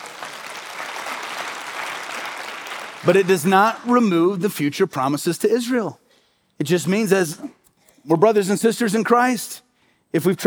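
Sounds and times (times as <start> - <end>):
church congregation applauding during a sermon: 0.0 - 4.5
speech: 3.0 - 6.0, 6.6 - 10.4.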